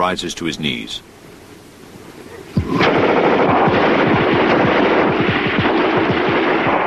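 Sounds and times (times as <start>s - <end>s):
speech: 0.0s - 1.2s
rifle gunfire from a squad on a ridge: 2.6s - 6.8s.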